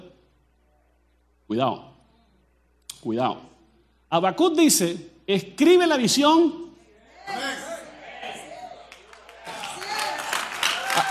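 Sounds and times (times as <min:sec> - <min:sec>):
speech: 0:01.5 - 0:01.9, 0:03.0 - 0:03.5, 0:04.1 - 0:06.7
murmuring voices and chatter: 0:06.8 - 0:10.3
audience applause: 0:08.2 - 0:11.0.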